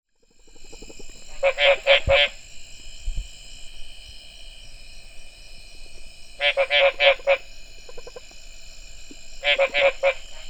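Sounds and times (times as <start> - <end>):
continuous high buzzing: 0.1 - 10.4
Mexican treefrog Smilisca baudinii croaking: 0.2 - 2.4, 6.4 - 8.4, 9.4 - 10.4.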